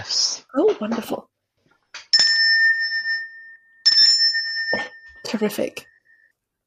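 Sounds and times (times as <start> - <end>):
speech: 0.0 - 1.3, 5.3 - 5.9
small bell ringing: 2.0 - 6.3.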